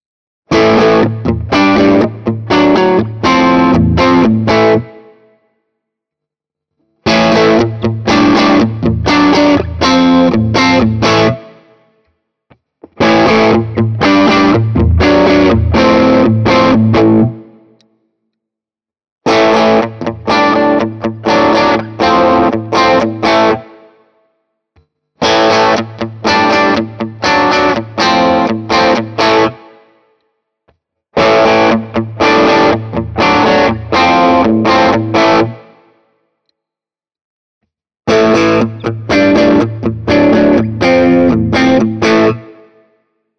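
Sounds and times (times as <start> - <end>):
Ibanez AR520HFM LBB electric guitar crunch riff in all pickup positions: 0.5 - 5.3, 7.0 - 11.7, 12.8 - 17.7, 19.3 - 23.9, 25.2 - 29.8, 31.2 - 35.9, 38.1 - 42.8.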